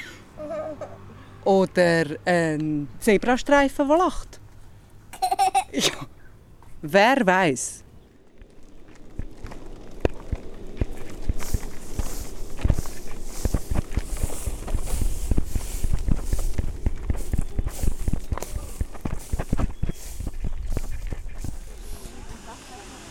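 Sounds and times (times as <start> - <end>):
broad hiss of open-air ambience: 0.0 - 23.0
speech: 0.7 - 4.4, 5.7 - 6.1, 6.8 - 7.8
footsteps crunching and tapping outdoors: 7.6 - 22.3.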